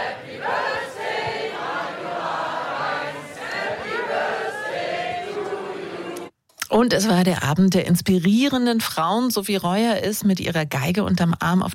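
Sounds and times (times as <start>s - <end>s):
large audience singing a birthday song: 0.0s - 6.3s
speech: 6.7s - 11.7s.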